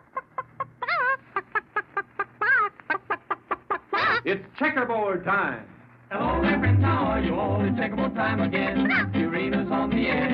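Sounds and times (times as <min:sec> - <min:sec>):
bird call effect of chicken-like clucking: 0:00.0 - 0:04.3, 0:08.8 - 0:09.2
speech: 0:04.2 - 0:10.3.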